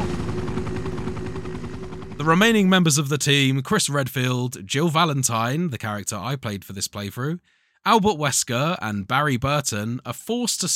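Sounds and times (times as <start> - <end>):
helicopter rotor chopping with engine drone while taking off: 0.0 - 3.1
speech: 2.2 - 10.7.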